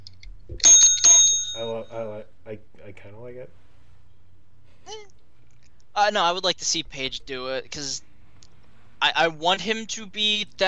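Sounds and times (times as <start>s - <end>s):
bright bell ringing: 0.6s - 1.9s
speech: 1.9s - 3.7s, 6.0s - 8.1s, 9.0s - 10.6s.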